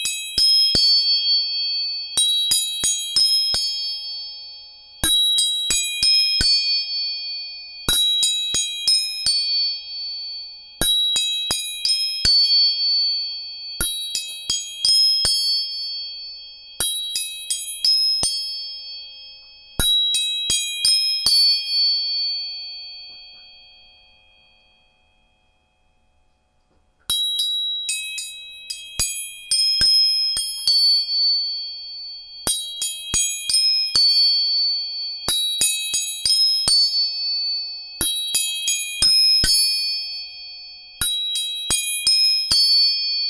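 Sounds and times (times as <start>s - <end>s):
tuning forks struck, ringing: 0.0s - 26.3s, 27.1s - 43.2s.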